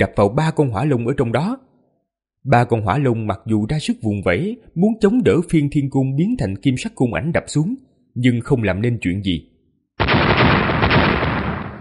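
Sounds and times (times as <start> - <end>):
speech: 0.0 - 1.6, 2.4 - 9.5
huge explosion sound effect: 10.0 - 11.8.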